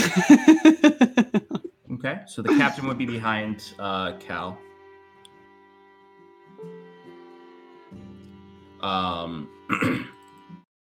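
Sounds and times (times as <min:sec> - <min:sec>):
laughter: 0:00.0 - 0:01.7, 0:02.4 - 0:03.8
speech: 0:00.2 - 0:00.6, 0:02.3 - 0:04.7, 0:08.8 - 0:10.2
human voice imitating Mongolian throat singing: 0:09.7 - 0:10.2.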